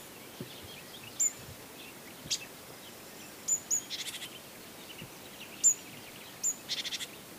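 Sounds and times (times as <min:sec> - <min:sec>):
steady background noise: 0:00.0 - 0:07.3
great tit Parus major calls: 0:00.2 - 0:07.2.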